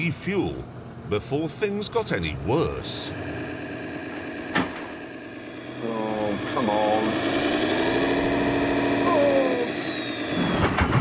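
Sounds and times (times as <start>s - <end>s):
speech: 0.0s - 3.5s, 5.8s - 7.2s
four-wheel-drive vehicle engine revving with four-wheel drive engaged: 2.2s - 10.9s.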